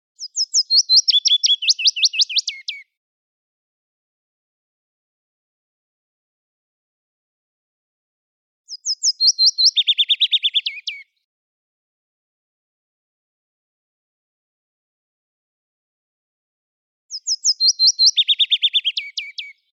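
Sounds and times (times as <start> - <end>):
willow warbler: 0.2 - 2.8, 8.7 - 11.1, 17.1 - 19.6.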